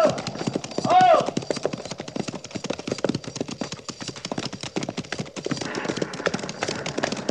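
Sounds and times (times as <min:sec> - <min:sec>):
horse whinny: 0:00.0 - 0:01.8, 0:05.5 - 0:07.2
horses' hooves clip-clopping as a mounted cavalry patrol sets off: 0:00.0 - 0:07.2.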